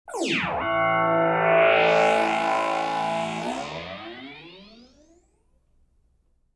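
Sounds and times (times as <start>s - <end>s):
science fiction energy field building up: 0.4s - 4.9s.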